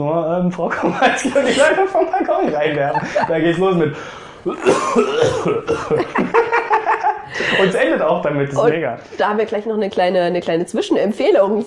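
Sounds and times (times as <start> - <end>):
speech: 0.0 - 6.4, 7.3 - 11.6
laughter: 0.7 - 8.2
person coughing: 4.5 - 6.2.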